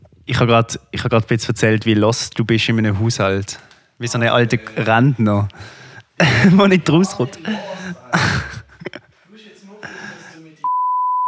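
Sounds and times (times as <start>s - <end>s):
speech: 0.3s - 8.4s
laughter: 4.2s - 10.6s
breathy garbled vocal sounds: 4.4s - 6.5s, 7.2s - 8.8s
loud steady censor bleep electronic tone: 10.6s - 11.2s.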